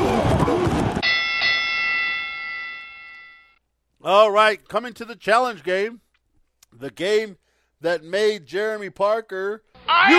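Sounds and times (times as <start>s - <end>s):
bell ringing: 1.0s - 3.6s
speech: 4.1s - 6.0s, 6.7s - 10.1s.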